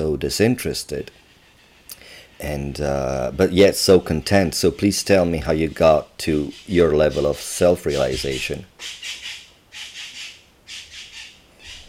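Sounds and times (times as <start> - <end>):
speech: 0.0 - 1.2, 2.4 - 9.2
tropical bird squawking: 1.0 - 2.5, 5.2 - 11.8.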